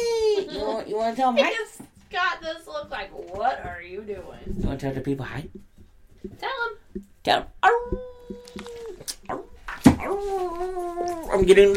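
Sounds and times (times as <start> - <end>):
speech: 0.8 - 8.7, 10.2 - 11.7
dog whimpering with high-pitched whines: 7.6 - 11.7.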